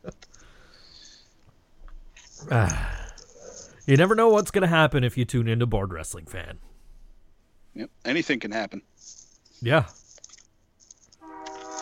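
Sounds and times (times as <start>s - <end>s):
speech: 2.5s - 2.9s, 3.9s - 6.7s, 7.8s - 10.0s
train horn blast: 11.2s - 11.8s.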